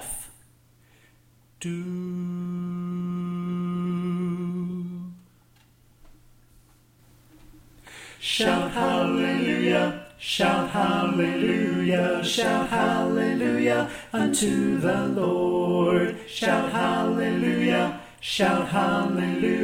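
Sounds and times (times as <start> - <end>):
alto voice on the left: 1.6 - 5.3, 8.3 - 19.6.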